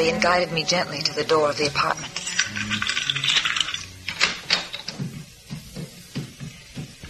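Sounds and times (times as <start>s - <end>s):
speech: 0.0s - 2.9s
set of keys handled and jingling: 2.2s - 4.9s.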